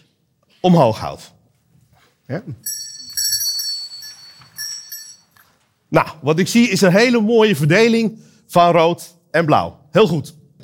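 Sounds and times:
speech: 0.6 - 1.4, 2.3 - 2.9, 5.9 - 10.6
small hand bell ringing: 2.6 - 5.6.

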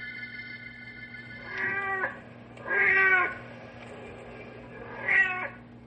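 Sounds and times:
tomcat yowling and meowing: 1.5 - 3.4, 4.9 - 5.6.

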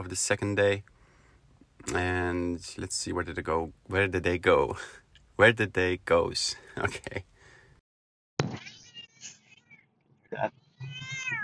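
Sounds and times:
speech: 0.0 - 1.0, 1.8 - 7.3, 10.4 - 10.9
cats meowing in complaint: 10.6 - 11.4.

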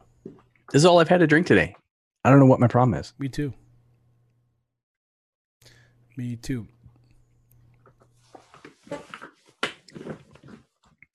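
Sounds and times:
speech: 0.3 - 3.6, 6.2 - 6.8, 8.9 - 9.2
chair creaking as someone shifts their weight: 7.8 - 10.8.

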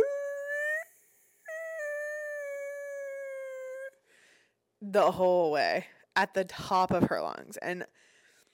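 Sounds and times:
voice imitating a dog screaming in the back seat of a car: 0.0 - 3.9
speech: 4.9 - 8.0.

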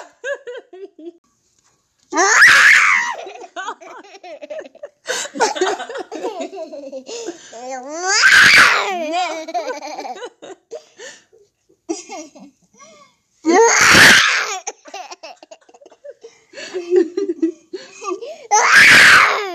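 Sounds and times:
young children giggling and laughing: 0.1 - 1.2, 2.9 - 7.5, 8.9 - 10.8, 11.9 - 12.7, 14.5 - 18.5
young children babbling, squealing and screaming playfully: 2.2 - 3.3, 8.0 - 9.0, 13.5 - 14.7, 18.5 - 19.5.

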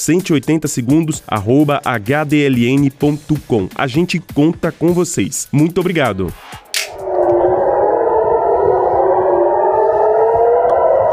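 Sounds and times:
speech: 0.0 - 6.6
air raid warning siren in Israel wailing to announce an attack: 6.6 - 11.1.

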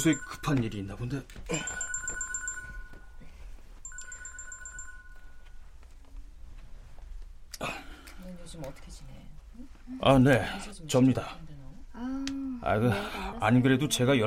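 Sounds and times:
mobile phone ringtone of rapid beeping tones: 0.0 - 0.9, 1.5 - 5.7
speech: 0.0 - 1.8, 8.6 - 14.2.

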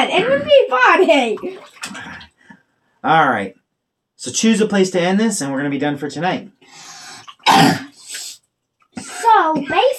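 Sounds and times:
speech: 0.0 - 2.2, 3.0 - 3.6, 4.2 - 6.9, 7.5 - 7.9
harsh cough: 7.4 - 8.0, 9.0 - 9.8
raspy throat clearing: 7.4 - 8.0.

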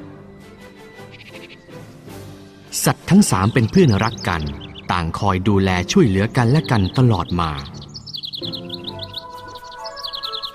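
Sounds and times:
small bird chirping: 0.5 - 1.9, 3.3 - 5.2, 6.1 - 10.5
speech: 2.7 - 7.8.

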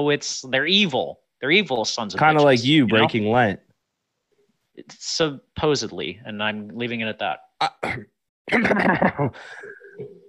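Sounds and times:
speech: 0.0 - 3.6, 4.8 - 10.2
person coughing: 7.6 - 10.1
quieter breathy sounds: 9.3 - 10.2.

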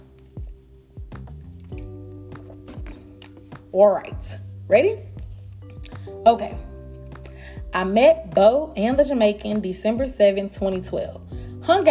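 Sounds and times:
person sipping and gulping water: 0.0 - 3.6
speech: 3.7 - 5.1, 6.2 - 6.7, 7.7 - 11.8.

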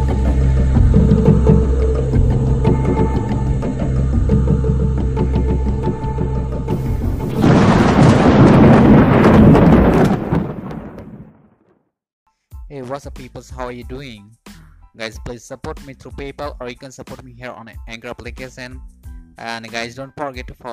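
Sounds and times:
deep rolling thunder rumbling: 0.0 - 11.7
steady rain: 6.7 - 11.2
speech: 12.9 - 14.4, 15.0 - 20.7.

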